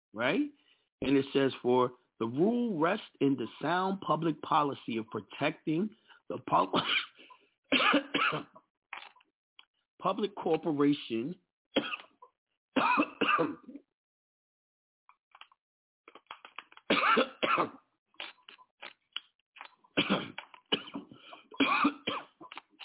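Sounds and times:
speech: 0.2 - 7.1, 7.7 - 8.6, 10.0 - 12.0, 12.8 - 13.8, 17.0 - 17.8, 20.0 - 20.4, 21.6 - 22.2
person coughing with a dry, irritated throat: 6.7 - 7.2, 7.8 - 8.5, 12.8 - 13.7, 16.9 - 17.8, 20.0 - 22.4.

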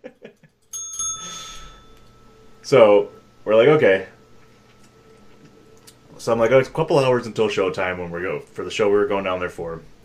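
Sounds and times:
bell ringing: 0.6 - 4.4
speech: 2.7 - 4.1, 6.2 - 10.0.

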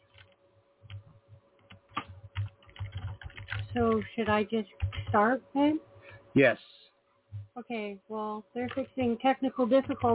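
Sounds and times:
faint electrical hum: 0.0 - 10.1
typing on a computer keyboard: 0.1 - 5.2, 8.6 - 10.1
speech: 3.7 - 6.7, 7.6 - 10.1.

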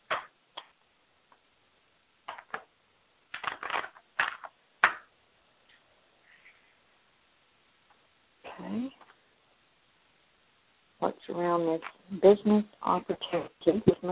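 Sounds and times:
deck of cards being shuffled: 2.3 - 2.7, 3.3 - 5.1
speech: 11.4 - 14.0.

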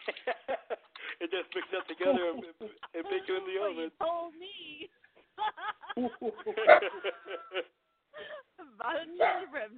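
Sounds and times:
laughter: 0.0 - 3.8, 5.4 - 8.8
speech: 1.5 - 4.8, 5.4 - 7.4
dog barking: 6.6 - 7.0, 9.2 - 9.6.

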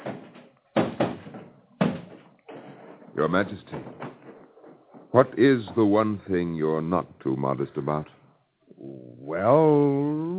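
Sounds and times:
wooden door being opened by a page: 0.0 - 5.8
speech: 3.2 - 4.1, 5.1 - 8.2, 9.3 - 10.2.

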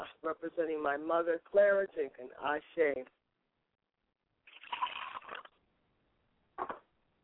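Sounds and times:
speech: 0.2 - 3.2, 6.6 - 6.8
liquid poured as a libation, splashing: 4.5 - 5.6.

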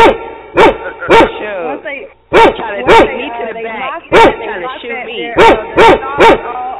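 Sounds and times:
big ferocious female dog barking: 0.0 - 1.5, 2.3 - 3.3, 4.1 - 4.6, 5.3 - 6.6
speech: 0.1 - 6.7.

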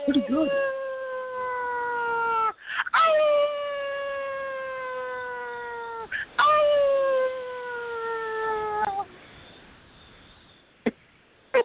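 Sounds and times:
person howling like a werewolf: 0.0 - 9.0.

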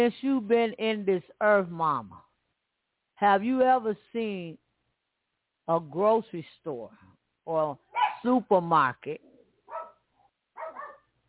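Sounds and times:
speech: 0.0 - 2.3, 3.2 - 4.6, 5.7 - 9.3
dogs barking indoors: 7.9 - 8.3, 9.7 - 11.1.

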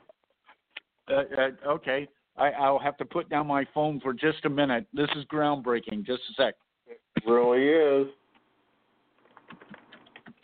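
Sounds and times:
speech: 1.1 - 6.6, 7.2 - 8.2
typing on a computer keyboard: 9.3 - 10.4.

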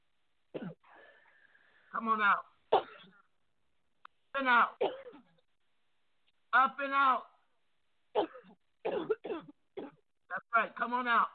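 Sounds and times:
person coughing during a prayer: 0.6 - 0.8, 4.8 - 5.3, 8.2 - 10.0
softer raspy breath: 0.8 - 1.9
speech: 2.0 - 2.9, 4.4 - 5.1, 6.5 - 7.3, 8.2 - 9.6, 10.3 - 11.3.

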